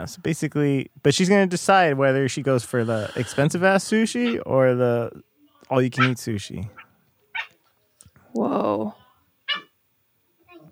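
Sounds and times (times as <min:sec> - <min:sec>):
speech: 0:00.0 - 0:06.8, 0:08.4 - 0:09.0
dogs yipping: 0:07.4 - 0:07.6, 0:09.5 - 0:09.7.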